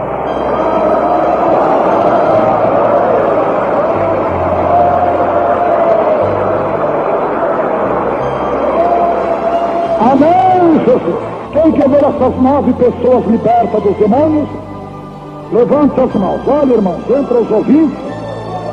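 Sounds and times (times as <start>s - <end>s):
audience clapping: 0.0s - 12.7s
speech: 11.7s - 14.7s, 15.5s - 18.0s.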